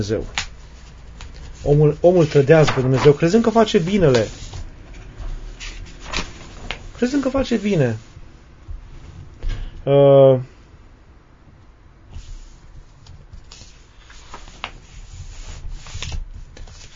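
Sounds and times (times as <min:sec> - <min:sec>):
speech: 0:00.0 - 0:00.4, 0:01.6 - 0:04.4, 0:07.0 - 0:08.1, 0:09.8 - 0:10.5
book pages rustling and being flipped: 0:00.2 - 0:04.7, 0:05.6 - 0:07.3, 0:13.0 - 0:16.9.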